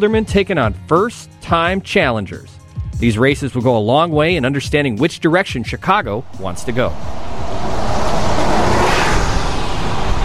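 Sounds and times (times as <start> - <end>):
speech: 0.0 - 7.3
street traffic engine and tire noise on West Belmont Avenue in Chicago: 6.0 - 10.2
vehicle passing on West Belmont Avenue in Chicago: 6.0 - 10.2.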